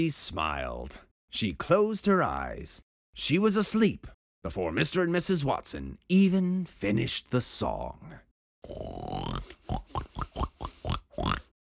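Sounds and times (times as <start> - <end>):
speech: 0.0 - 10.5
person imitating a pig squealing and oinking: 8.6 - 11.6.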